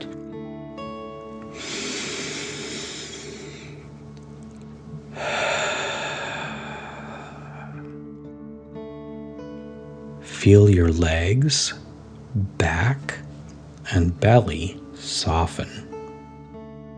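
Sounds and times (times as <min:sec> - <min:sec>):
soft sustained musical drone: 0:00.0 - 0:16.9
deep breath in and out: 0:01.5 - 0:03.9, 0:05.1 - 0:08.0
speech: 0:10.4 - 0:13.2, 0:13.9 - 0:15.9.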